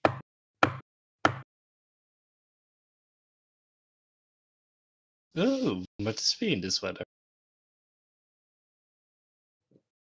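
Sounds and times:
firm knocking on a door: 0:00.0 - 0:01.5
speech: 0:05.4 - 0:07.2.

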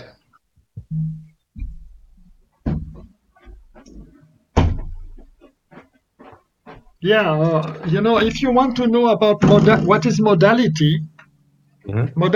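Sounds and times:
shuffling and handling noises: 0:01.6 - 0:08.8
door being swung shut with solid resonant thumps: 0:02.6 - 0:05.2, 0:09.4 - 0:10.0
speech: 0:07.0 - 0:11.1, 0:11.9 - 0:12.3.

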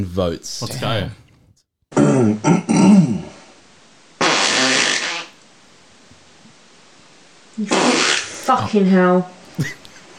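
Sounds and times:
speech: 0:00.0 - 0:01.2, 0:07.6 - 0:09.8
loud sputtering fart: 0:01.9 - 0:03.5, 0:04.2 - 0:05.4, 0:07.6 - 0:08.6.

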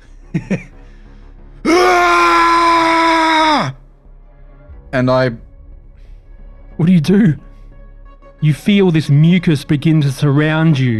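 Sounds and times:
speech: 0:00.4 - 0:00.8, 0:04.9 - 0:05.4, 0:06.8 - 0:07.4, 0:08.4 - 0:10.9
person screaming in terror: 0:01.6 - 0:03.8
person yelping: 0:01.7 - 0:03.8.

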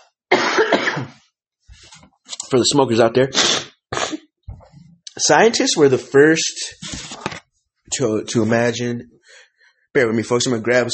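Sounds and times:
cough: 0:00.3 - 0:01.2, 0:03.4 - 0:04.3
speech: 0:02.5 - 0:03.7, 0:05.2 - 0:07.0, 0:08.0 - 0:09.2, 0:10.0 - 0:10.9
faint breath: 0:09.2 - 0:09.9.

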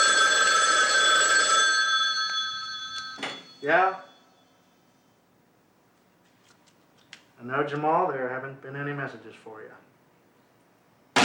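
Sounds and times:
telephone ringing with an electronic tone: 0:00.0 - 0:04.6
speech: 0:03.6 - 0:04.1, 0:07.4 - 0:09.9.

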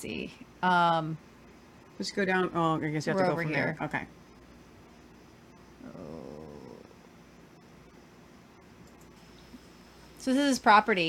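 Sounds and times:
speech: 0:00.0 - 0:01.3, 0:02.0 - 0:04.2, 0:10.2 - 0:11.0
low hum: 0:00.0 - 0:11.0
dog growling and whimpering: 0:05.8 - 0:07.0.

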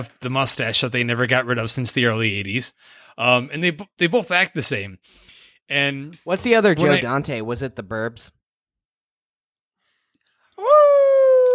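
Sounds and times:
speech: 0:00.0 - 0:08.4
person imitating a howl: 0:10.6 - 0:11.5.

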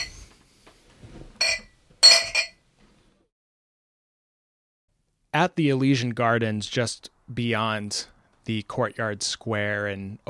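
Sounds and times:
glasses clinking together in a toast: 0:00.0 - 0:00.3, 0:01.4 - 0:02.6
speech: 0:05.4 - 0:10.2.

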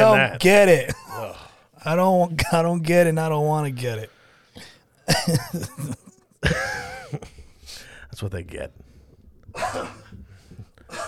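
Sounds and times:
speech: 0:00.1 - 0:01.0, 0:01.8 - 0:07.3, 0:08.2 - 0:08.9, 0:09.5 - 0:10.1
person coughing harshly: 0:04.6 - 0:07.2, 0:09.5 - 0:10.2, 0:10.9 - 0:11.0.

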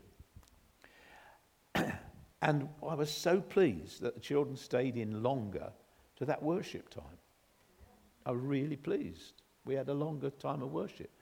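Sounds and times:
breathing: 0:00.8 - 0:01.5, 0:05.8 - 0:06.2
loud cough: 0:01.7 - 0:02.2
speech: 0:02.4 - 0:07.2, 0:08.2 - 0:11.2.

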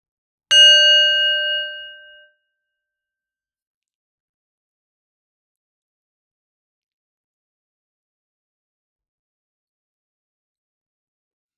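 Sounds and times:
meditation bell being struck: 0:00.5 - 0:02.3.

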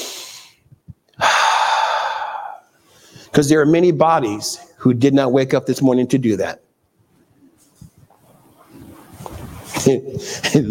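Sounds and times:
person exhaling on waking: 0:00.0 - 0:00.6, 0:01.2 - 0:03.2
long, loud, airy breath taken on waking while sitting on the edge of a bed: 0:01.2 - 0:03.3
speech: 0:03.4 - 0:06.6, 0:09.8 - 0:10.7.

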